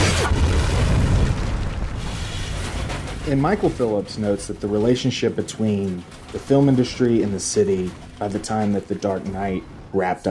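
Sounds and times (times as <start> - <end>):
bazooka blast explosion: 0.0 - 5.0
heavy low rumble: 0.0 - 10.2
speech: 3.3 - 10.2.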